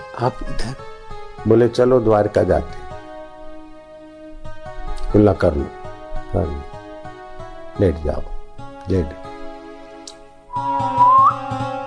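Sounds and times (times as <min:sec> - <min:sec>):
speech: 0:00.2 - 0:02.8, 0:05.1 - 0:06.8, 0:07.8 - 0:08.3, 0:08.9 - 0:09.2
person whistling a single steady note: 0:10.5 - 0:11.8.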